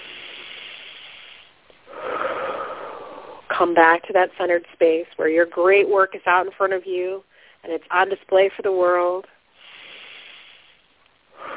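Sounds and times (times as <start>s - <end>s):
deep breathing during a guided breathing exercise: 0.0s - 3.5s, 9.5s - 11.5s
speech: 3.6s - 9.4s.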